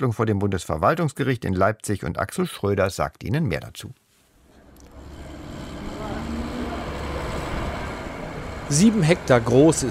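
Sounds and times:
speech: 0:00.0 - 0:04.0, 0:08.7 - 0:09.9
truck traffic roaring on a motorway: 0:04.6 - 0:09.9.

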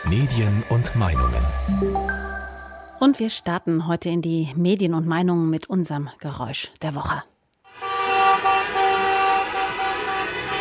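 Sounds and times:
speech: 0:00.0 - 0:02.4, 0:03.0 - 0:07.3
car horns honking from a motorcade driving through German cities: 0:07.7 - 0:10.5.

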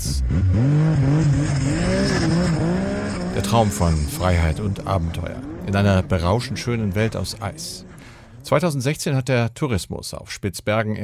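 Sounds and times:
motor engine revving on an icy Spitzbergen tour: 0:00.0 - 0:08.6
speech: 0:03.5 - 0:11.0.

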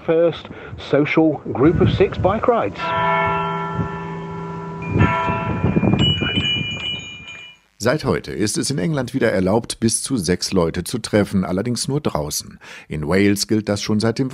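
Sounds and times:
speech: 0:00.0 - 0:04.0, 0:07.8 - 0:14.3
bell ringing on a village square in England: 0:01.6 - 0:07.8.

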